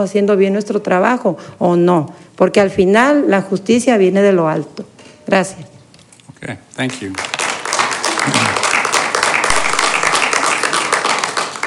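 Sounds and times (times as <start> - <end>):
speech: 0.0 - 5.7, 6.4 - 7.4
audience applauding a speaker at a meeting: 6.8 - 11.6.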